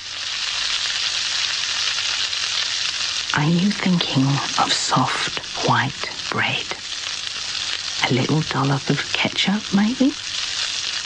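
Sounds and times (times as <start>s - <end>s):
bacon sizzling while frying in a pan: 0.0s - 11.0s
speech: 3.4s - 6.8s, 8.0s - 10.2s.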